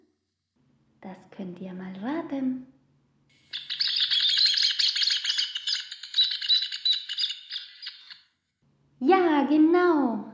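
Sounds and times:
speech: 0:01.0 - 0:02.8, 0:09.0 - 0:10.3
rufous hornero calling in a loud rapid chattering trill: 0:03.4 - 0:08.2.

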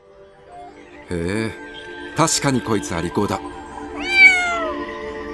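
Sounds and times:
speech: 0:01.1 - 0:03.6
black cat meowing: 0:03.9 - 0:04.9.

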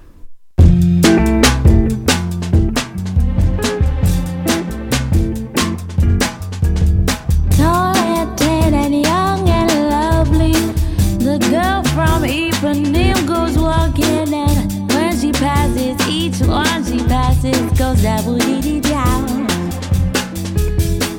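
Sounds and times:
bossa nova song: 0:00.6 - 0:21.1
guitar chords: 0:00.6 - 0:21.1
light percussion: 0:00.6 - 0:21.1
soft female voice singing: 0:07.5 - 0:20.0.

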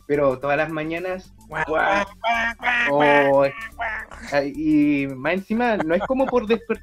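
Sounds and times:
speech: 0:00.1 - 0:06.8
person imitating duck quacks: 0:01.5 - 0:04.4
laughter: 0:01.5 - 0:04.5, 0:05.6 - 0:06.8.

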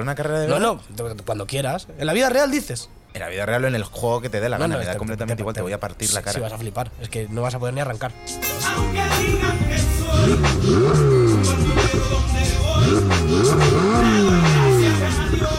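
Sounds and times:
speech: 0:00.0 - 0:15.4
Maserati sports car engine revving over idle growl: 0:09.9 - 0:15.5.

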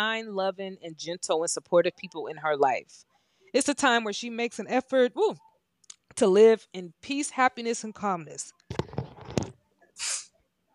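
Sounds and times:
speech: 0:00.0 - 0:05.5, 0:06.2 - 0:08.6
loud sneeze: 0:10.0 - 0:10.3.

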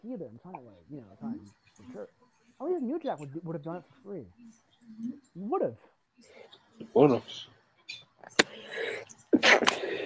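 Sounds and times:
speech: 0:00.0 - 0:07.6
person sneezing: 0:09.4 - 0:10.0.

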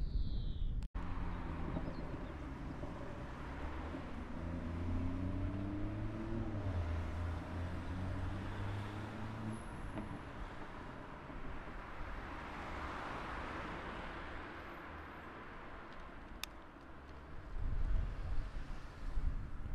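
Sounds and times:
vehicle-like surge: 0:01.0 - 0:15.8
road noise from a bicycle leaving town along a street: 0:01.0 - 0:19.7
wind rush from riding a bicycle: 0:17.4 - 0:19.7.

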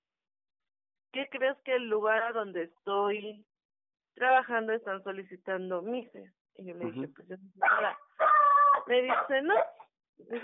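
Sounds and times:
speech: 0:01.2 - 0:03.5, 0:04.2 - 0:08.1, 0:08.8 - 0:09.6, 0:10.2 - 0:10.4
dog barking: 0:07.6 - 0:09.9.

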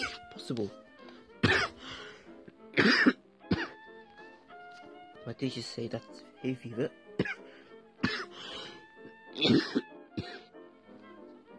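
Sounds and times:
person clearing throat: 0:00.0 - 0:00.2, 0:01.4 - 0:01.8, 0:02.8 - 0:03.8, 0:07.2 - 0:07.4, 0:08.0 - 0:08.4, 0:09.4 - 0:10.5
person with a month-long cough coughing: 0:00.0 - 0:00.2, 0:01.4 - 0:01.8, 0:02.8 - 0:03.8, 0:07.2 - 0:08.8, 0:09.4 - 0:10.5
speech: 0:00.5 - 0:00.8, 0:02.8 - 0:03.2, 0:05.3 - 0:07.4, 0:09.4 - 0:09.9.

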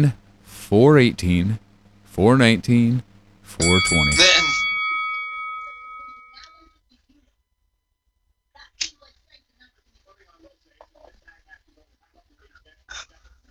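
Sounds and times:
speech: 0:00.0 - 0:01.6, 0:02.2 - 0:04.4
wrestling ring bell clanging: 0:00.0 - 0:06.5
sharp metal clanks: 0:03.6 - 0:06.4.

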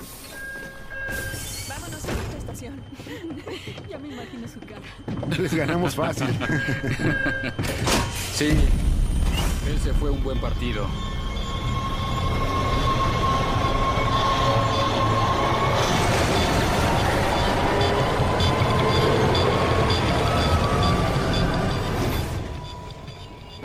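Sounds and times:
faint high squealing: 0:00.0 - 0:03.0, 0:09.4 - 0:23.6
train carriage wheels rolling and rattling: 0:00.0 - 0:23.6
speech: 0:02.6 - 0:08.9, 0:09.7 - 0:11.1
laughter: 0:02.9 - 0:07.9.

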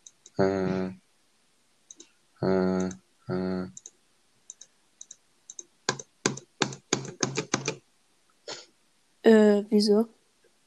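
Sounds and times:
speech: 0:00.4 - 0:01.0, 0:02.4 - 0:03.8, 0:09.3 - 0:10.2
typing on a computer keyboard: 0:02.8 - 0:03.0, 0:03.7 - 0:07.8.

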